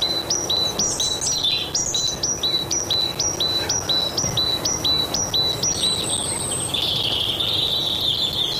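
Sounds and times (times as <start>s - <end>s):
faint other bird chirps: 0.0s - 8.5s
great tit singing a two-note phrase: 0.0s - 8.5s
steady hiss of outdoor noise: 0.0s - 8.5s.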